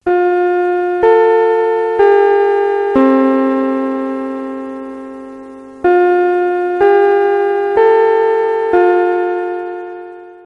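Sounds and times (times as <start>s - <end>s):
Japanese school bell: 0.0s - 10.4s.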